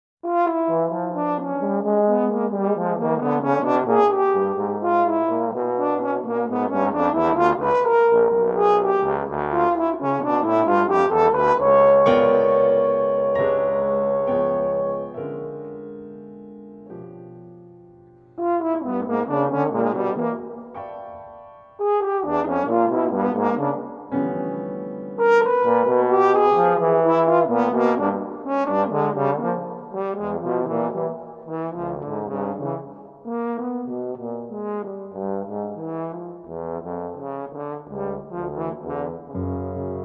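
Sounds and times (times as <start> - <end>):
bass trombone: 0.2 - 15.8, 18.3 - 21.0, 21.8 - 40.0
French horn: 0.2 - 16.2, 18.3 - 21.0, 21.8 - 40.0
piano: 0.2 - 40.0.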